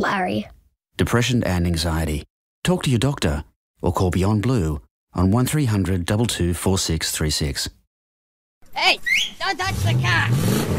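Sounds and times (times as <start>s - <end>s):
speech: 0.0s - 7.8s, 8.7s - 10.7s
car engine revving: 9.6s - 10.7s.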